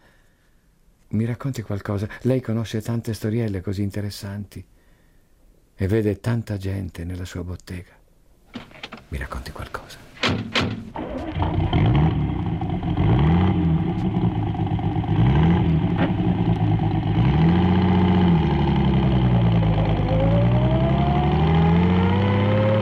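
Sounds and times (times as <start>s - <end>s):
speech: 1.1s - 4.7s, 5.8s - 10.8s, 11.6s - 12.0s
brief thump: 10.2s - 11.0s
car engine droning while accelerating and shifting gears: 10.2s - 22.8s.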